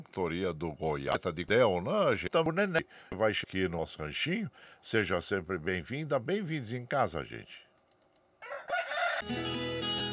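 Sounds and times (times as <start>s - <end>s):
speech: 0.1s - 7.6s, 9.2s - 10.0s
rooster crowing: 8.4s - 9.4s
music: 9.2s - 10.1s.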